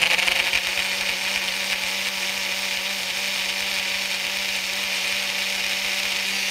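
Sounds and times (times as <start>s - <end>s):
kitchen blender whirring at full speed mixing water into drink: 0.0s - 6.4s.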